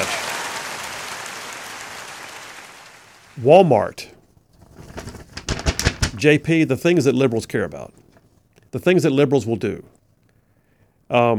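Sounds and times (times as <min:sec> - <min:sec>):
crowd applause: 0:00.0 - 0:03.3
speech: 0:03.4 - 0:04.1, 0:06.2 - 0:08.0, 0:08.7 - 0:10.0, 0:11.1 - 0:11.3.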